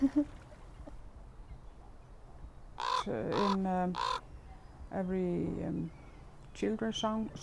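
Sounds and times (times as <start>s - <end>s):
speech: 0.0s - 0.4s, 3.1s - 4.2s, 4.9s - 6.0s, 6.6s - 7.4s
quiet outdoor background: 0.0s - 7.4s
raven giving harsh croaking calls: 2.8s - 4.2s.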